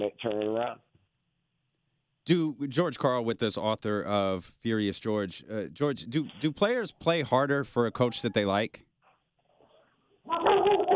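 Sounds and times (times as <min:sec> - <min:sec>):
speech: 0:00.0 - 0:00.9, 0:02.3 - 0:08.9
dog barking: 0:08.0 - 0:08.6, 0:10.3 - 0:10.9.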